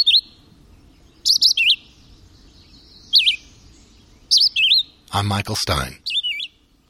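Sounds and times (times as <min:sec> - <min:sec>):
red-eyed vireo singing short sweet whistled phrases: 0:00.0 - 0:00.4, 0:01.0 - 0:05.0, 0:06.0 - 0:06.6
speech: 0:05.1 - 0:06.1.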